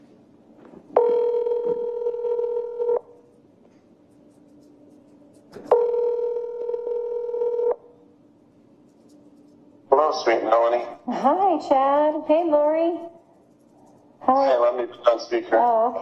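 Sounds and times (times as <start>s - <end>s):
electronic ringback tones of an outgoing telephone call: 1.0s - 3.0s, 5.7s - 7.8s
speech: 10.2s - 13.2s, 14.4s - 16.0s.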